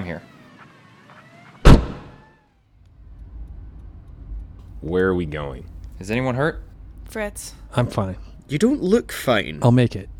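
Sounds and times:
speech: 0.1 - 0.3, 4.8 - 10.1
car door of a non-civilian vehicle slamming: 1.6 - 2.2
low steady rumble inside a vehicle: 2.7 - 10.1.

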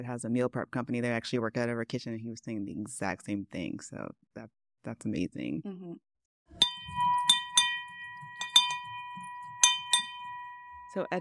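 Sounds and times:
speech: 0.0 - 6.7, 10.9 - 11.2
bell ringing in celebration: 6.6 - 11.2.

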